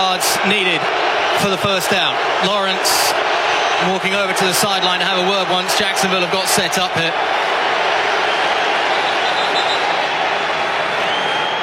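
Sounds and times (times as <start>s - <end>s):
speech: 0.0s - 7.5s
stadium crowd roar: 0.0s - 11.6s
referee whistles blowing: 8.2s - 10.1s, 10.8s - 11.6s.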